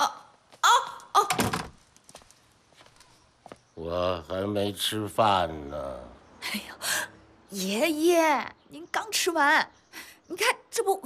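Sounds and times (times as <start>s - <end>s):
door creaking and thunking shut: 1.2s - 1.8s
speech: 3.8s - 6.9s, 7.5s - 11.0s.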